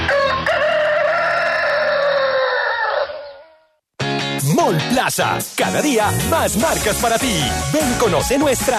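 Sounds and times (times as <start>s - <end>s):
rooster crowing: 0.1s - 3.8s
speech: 5.0s - 8.7s.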